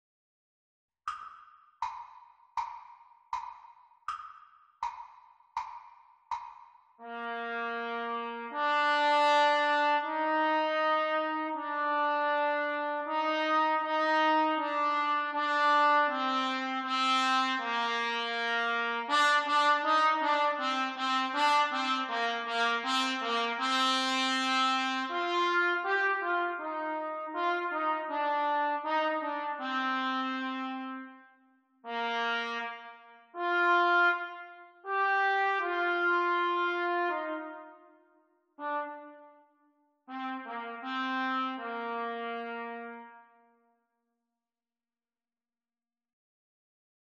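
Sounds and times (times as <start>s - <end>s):
trumpet duet at exam speed: 7.0s - 38.0s, 38.6s - 39.5s, 40.1s - 43.4s.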